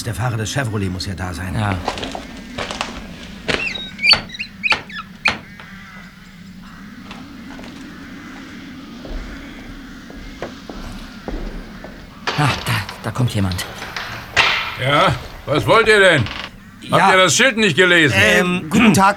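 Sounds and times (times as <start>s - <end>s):
speech: 0.0s - 2.3s, 13.2s - 13.9s, 14.8s - 19.1s
knocking on a castle door: 1.8s - 5.7s, 7.1s - 16.6s.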